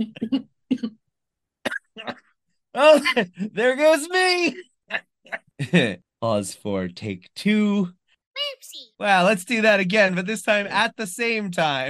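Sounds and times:
speech: 0.0 - 1.0, 2.8 - 5.0, 5.6 - 11.8
person coughing roughly: 1.7 - 2.2.

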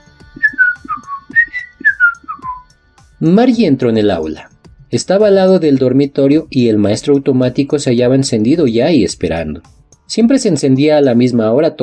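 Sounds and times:
boy whistling a lilting tune while walking away: 0.3 - 2.8
speech: 3.2 - 11.8.

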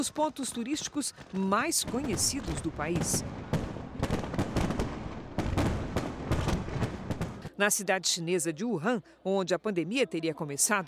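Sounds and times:
speech: 0.0 - 3.6, 7.6 - 10.8
fireworks display booming and crackling: 0.0 - 7.6.

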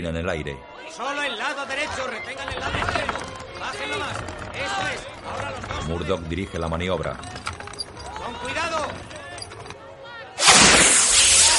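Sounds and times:
speech: 0.0 - 7.5
signal flare fired and bursting over a sinking ocean liner: 10.4 - 11.5
sustained harsh broadband roar and hiss of a signal flare: 10.4 - 11.5.

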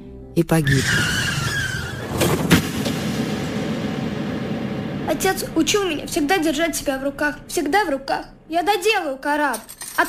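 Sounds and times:
speech: 0.4 - 1.2, 5.1 - 10.0
car tires squealing in a long skid: 0.6 - 2.6
car crashing into truck: 1.4 - 4.6.

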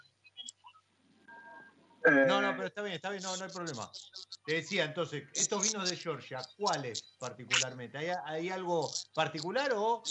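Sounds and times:
mobile phone signal interference chirps and beeps on a microphone: 0.0 - 1.5, 3.2 - 4.8, 5.4 - 7.8, 8.8 - 10.0
speech: 2.0 - 10.0.

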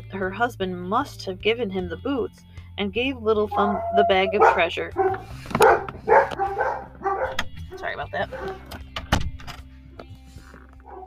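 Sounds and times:
speech: 0.1 - 8.7
dogs barking: 3.5 - 8.7, 10.8 - 11.0.

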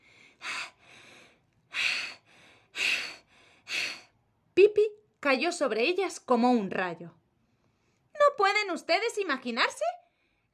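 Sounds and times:
heavy breathy panting: 0.0 - 4.2
speech: 5.3 - 7.2, 8.7 - 10.0.

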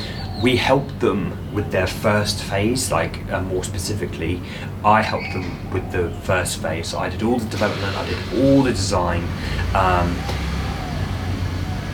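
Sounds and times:
speech: 0.4 - 10.4
car passing by with engine drone and road noise: 7.6 - 11.9.

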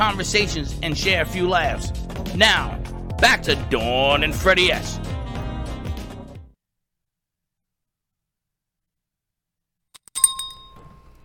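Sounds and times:
speech: 0.0 - 5.1
music: 0.0 - 6.6
small bell ringing: 10.0 - 11.2.

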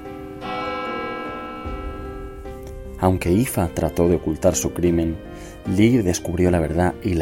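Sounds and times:
church bell ringing: 0.0 - 5.4
speech: 3.0 - 7.2.

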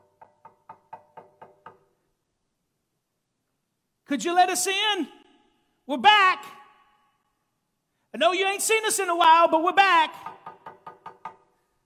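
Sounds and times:
firm knocking on a door: 0.0 - 1.9, 10.2 - 11.5
speech: 4.1 - 5.2, 5.9 - 6.6, 8.2 - 10.3.

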